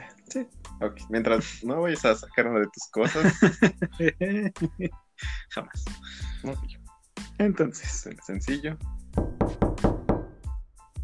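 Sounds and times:
speech: 0.3s - 6.8s, 7.4s - 9.7s
laughter: 3.0s - 5.4s
knocking on a door: 9.1s - 10.5s.

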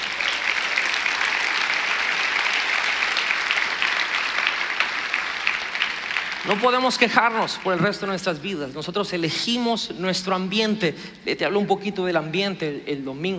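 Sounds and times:
large audience applause: 0.0s - 8.3s
speech: 6.4s - 13.3s.

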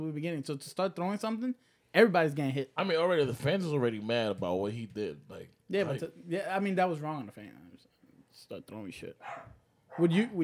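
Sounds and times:
speech: 0.0s - 7.6s, 8.4s - 10.4s
dog barking: 9.2s - 10.2s.

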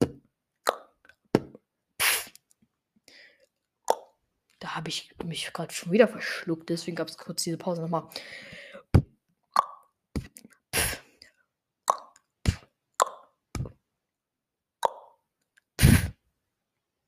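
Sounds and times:
person making beatbox sounds: 0.0s - 2.4s, 8.9s - 11.1s, 11.9s - 13.7s, 15.8s - 16.2s
speech: 4.6s - 8.6s.

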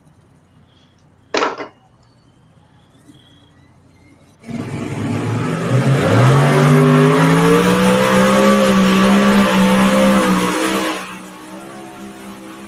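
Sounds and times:
twin Hemi engines on a modified pulling tractor roaring during a tractor pull run: 4.3s - 12.6s.

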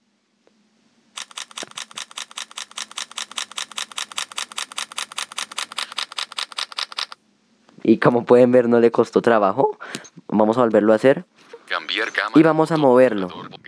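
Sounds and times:
phone camera shutter firing in continuous burst: 1.2s - 7.2s
speech: 7.9s - 11.3s, 12.2s - 13.4s.

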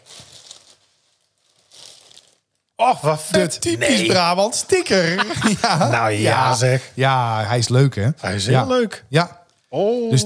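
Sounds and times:
plastic or paper bag rustling as it is opened: 0.0s - 2.5s
speech: 2.8s - 10.2s
laughter: 3.4s - 6.9s.

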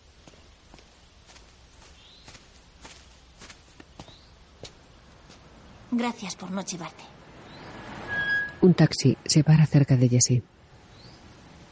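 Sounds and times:
man's soft footsteps walking out of a house: 0.0s - 5.6s
steady hiss: 0.0s - 11.6s
speech: 6.0s - 7.1s, 8.6s - 10.6s.

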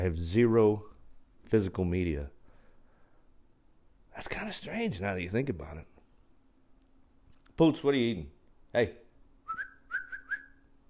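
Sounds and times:
speech: 0.0s - 0.9s, 1.5s - 2.4s, 4.2s - 5.9s, 7.6s - 9.0s
faint steady hum: 0.0s - 10.8s
person whistling to call a pet: 9.4s - 10.7s.

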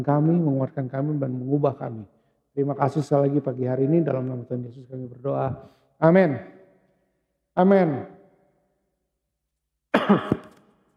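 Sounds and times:
speech: 0.0s - 6.6s, 7.6s - 8.2s, 10.1s - 10.4s
person coughing: 10.0s - 10.6s.

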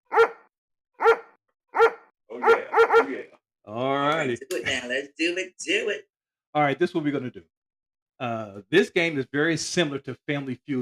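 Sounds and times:
man imitating a barking dog: 1.8s - 3.2s
man imitating a dog's howling yelp: 2.4s - 3.1s
speech: 3.0s - 7.5s, 8.2s - 10.8s.

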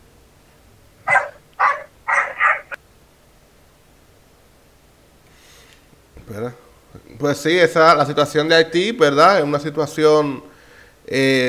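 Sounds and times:
dogs barking in the background: 1.0s - 2.8s
speech: 6.3s - 10.5s, 11.1s - 11.4s.

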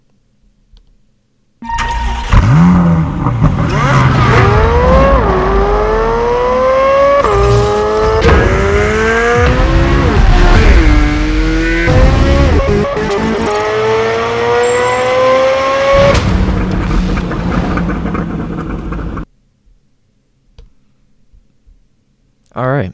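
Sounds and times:
Chevrolet Corvette Z06 sports car engine revving: 2.2s - 19.2s.

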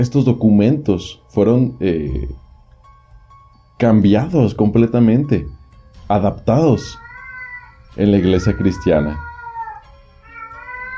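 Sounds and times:
speech: 0.0s - 2.4s, 3.8s - 7.0s, 7.9s - 9.3s
cat meowing: 6.8s - 10.9s.

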